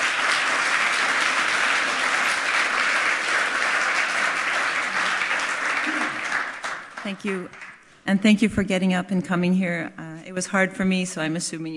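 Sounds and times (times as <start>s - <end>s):
audience applause welcoming a speaker: 0.0s - 7.8s
speech: 7.1s - 11.7s.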